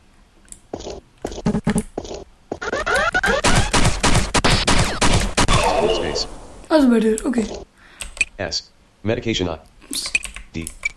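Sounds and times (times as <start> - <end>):
pistol gunfire in a video game: 2.5 - 6.2
speech: 6.8 - 7.7, 8.4 - 10.8.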